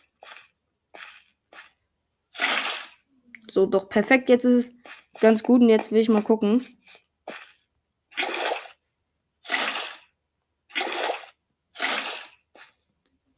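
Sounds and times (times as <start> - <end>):
splashy water bursts in a video game: 0.0 - 1.8, 2.4 - 3.0, 4.7 - 5.5, 7.3 - 8.8, 9.4 - 10.1, 10.7 - 12.7
speech: 3.5 - 7.0.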